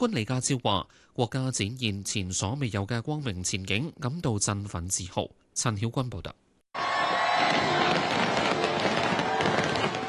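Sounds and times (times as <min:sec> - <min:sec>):
speech: 0:00.0 - 0:06.4
fireworks exploding over harbour: 0:07.1 - 0:10.0.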